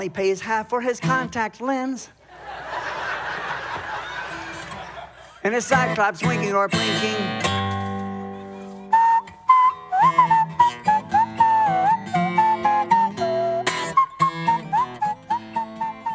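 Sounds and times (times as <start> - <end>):
speech: 0.0 - 2.2, 5.4 - 7.5
laughter: 2.3 - 6.0
person whistling a clear wavering melody: 8.6 - 16.1.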